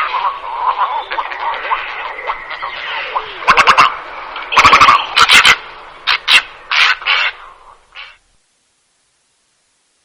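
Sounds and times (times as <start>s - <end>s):
little egret squawking: 0.0s - 8.2s.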